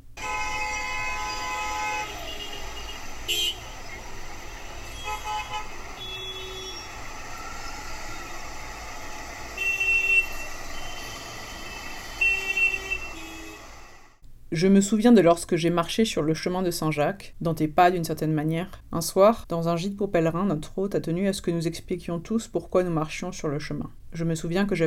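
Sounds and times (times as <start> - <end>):
busy street traffic roaring with engines droning: 0.0 - 14.2
car horns tooting: 0.1 - 8.3, 9.5 - 13.9
speech: 14.5 - 24.8.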